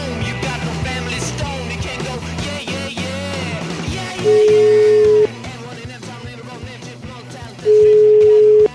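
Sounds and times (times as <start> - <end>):
music: 0.0 - 8.7
telephone call ringing tone: 4.2 - 5.3, 7.7 - 8.7.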